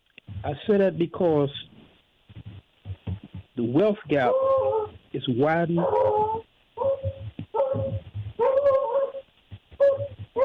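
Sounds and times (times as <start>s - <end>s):
speech: 0.4s - 1.6s, 3.6s - 6.5s
dog barking and yelping outside a closed window: 4.2s - 5.0s, 5.7s - 10.4s.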